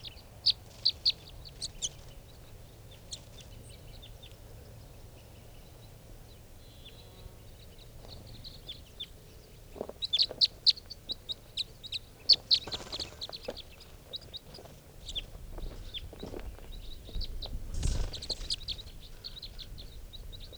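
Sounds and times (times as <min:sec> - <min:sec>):
wild birds chirping and clucking outdoors: 0:00.0 - 0:20.5.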